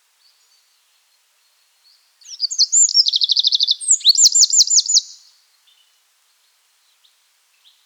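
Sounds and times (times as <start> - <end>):
Eurasian wren Troglodytes troglodytes singing: 2.2 - 5.2.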